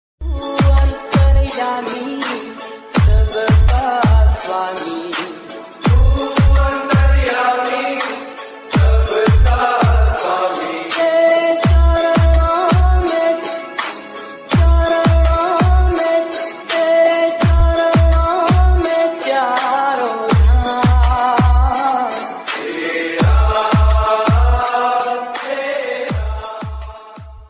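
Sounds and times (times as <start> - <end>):
Hindu devotional bhajan ringtone: 0.2 - 27.4.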